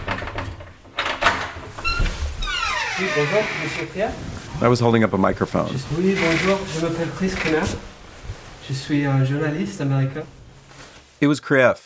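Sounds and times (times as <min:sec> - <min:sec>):
door creaking: 0:00.0 - 0:04.2, 0:05.9 - 0:08.0, 0:09.4 - 0:10.6
speech: 0:03.0 - 0:07.9, 0:08.7 - 0:10.4, 0:11.2 - 0:11.8.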